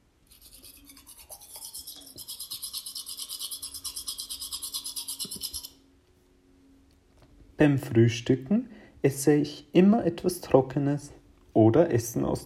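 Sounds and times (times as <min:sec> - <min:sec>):
toothbrush scrubbing against teeth: 0:00.3 - 0:05.7
speech: 0:07.6 - 0:12.4.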